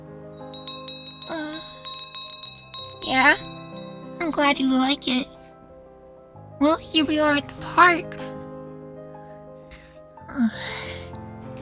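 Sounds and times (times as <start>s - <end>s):
small bells jingling: 0.4s - 5.4s
speech: 3.1s - 3.5s, 4.3s - 5.3s, 6.6s - 8.3s, 10.3s - 10.9s.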